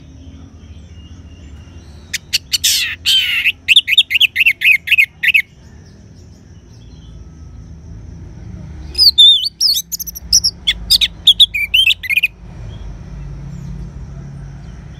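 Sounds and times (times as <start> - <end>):
Orange-headed thrush singing varied whistled phrases: 2.0 - 5.6, 8.9 - 12.3.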